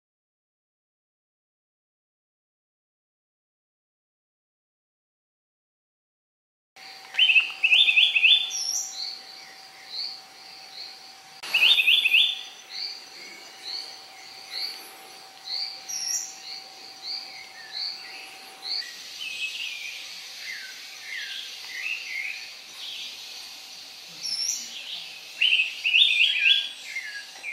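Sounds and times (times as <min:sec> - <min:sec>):
Araripe manakin singing: 0:06.8 - 0:27.5.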